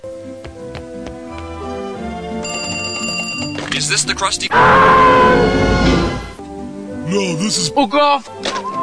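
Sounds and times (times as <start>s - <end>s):
toy phone ringing with electronic tone: 2.4s - 5.5s
speech: 3.9s - 5.7s, 7.1s - 8.7s.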